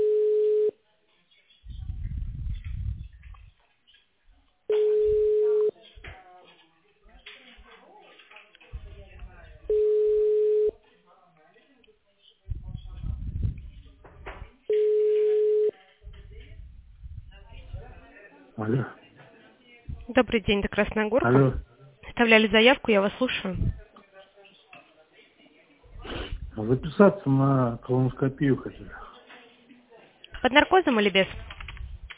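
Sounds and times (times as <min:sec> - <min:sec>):
telephone ringback tone over a narrow phone line: 0:00.0 - 0:00.8, 0:04.7 - 0:05.7, 0:09.7 - 0:10.7, 0:14.7 - 0:15.7
talk: 0:04.3 - 0:32.1
speech: 0:20.2 - 0:23.8, 0:26.6 - 0:29.0, 0:30.4 - 0:31.5.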